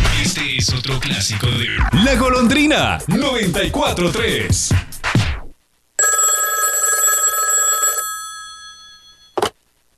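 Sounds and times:
speech: 0.3s - 4.9s
telephone bell ringing: 6.0s - 9.4s.

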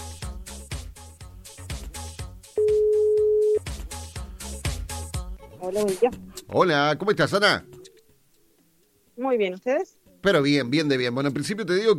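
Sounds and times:
upbeat music: 0.0s - 7.9s
telephone ringback tone while calling: 2.6s - 3.6s
speech: 5.7s - 7.7s, 9.2s - 11.9s.

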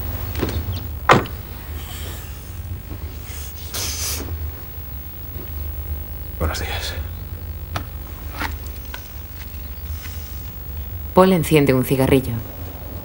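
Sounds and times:
woman shifting and settling into a parked car at night: 0.2s - 3.5s
car door shutting: 0.3s - 1.6s
speech: 6.6s - 7.1s, 11.2s - 12.6s.

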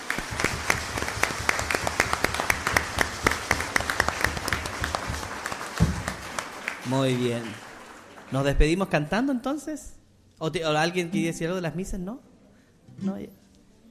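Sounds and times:
audience clapping: 0.0s - 9.0s
speech: 6.9s - 7.6s, 8.3s - 12.3s, 13.0s - 13.8s.

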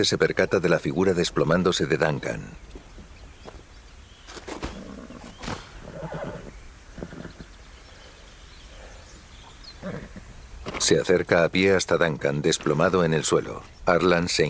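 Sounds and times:
speech: 0.0s - 2.7s, 10.9s - 14.4s
constant hiss of noise: 0.0s - 14.4s
mare neighing and snorting as someone mounts it: 4.5s - 7.6s, 9.7s - 10.4s.

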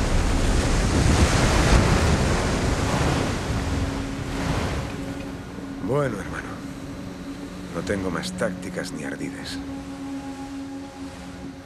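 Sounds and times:
wind noise buffeting the microphone: 0.0s - 5.1s
ship cutting through ocean waves: 0.0s - 11.6s
speech: 6.0s - 6.4s, 7.8s - 10.0s.

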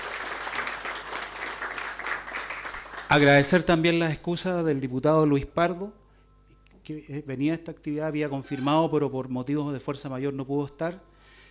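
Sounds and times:
audience applause from a sizable crowd: 0.0s - 3.5s
speech: 3.1s - 6.0s, 6.9s - 11.1s.

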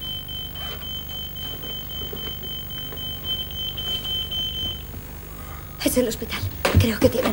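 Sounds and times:
telephone ringing with a high electronic tone: 0.0s - 5.0s
low hum: 0.0s - 7.3s
speech: 5.8s - 7.3s.

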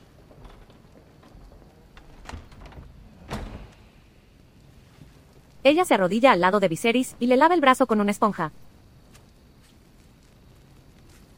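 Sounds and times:
heavy chamber door swung shut by servants with a creak and thud: 0.2s - 4.2s
speech: 5.6s - 8.6s.

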